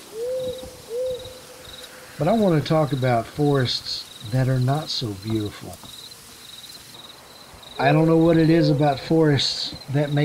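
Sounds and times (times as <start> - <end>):
owl hooting: 0.0 - 3.2, 7.8 - 9.8
faint insect-like whine: 0.0 - 10.2
speech: 2.2 - 6.0, 7.8 - 10.2.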